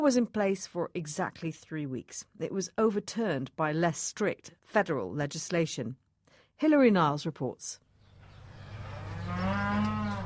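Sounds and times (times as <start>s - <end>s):
speech: 0.0s - 6.0s, 6.6s - 7.8s
cow from a herd of Angus, Hereford and Charolais cattle mooing on a farm: 8.6s - 10.2s.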